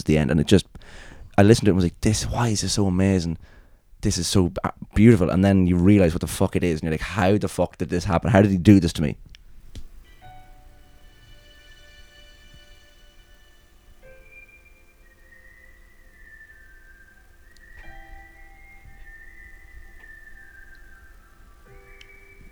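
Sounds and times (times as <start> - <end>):
speech: 0.0 - 9.3
whistled melody with long held notes: 9.5 - 22.5
steady droning music backing: 9.6 - 22.5.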